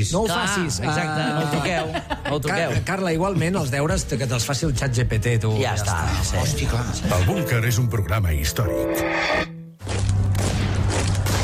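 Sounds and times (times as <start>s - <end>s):
speech: 0.0s - 9.5s
laughter: 0.8s - 2.8s, 6.8s - 7.6s
gunfire as a war sound effect: 9.8s - 11.4s
explosions as a war sound effect: 9.9s - 11.4s.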